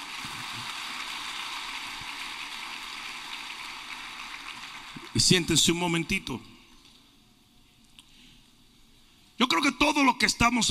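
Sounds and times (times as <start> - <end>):
audience applauding: 0.0 - 6.2
speech: 5.2 - 6.5, 10.2 - 10.6.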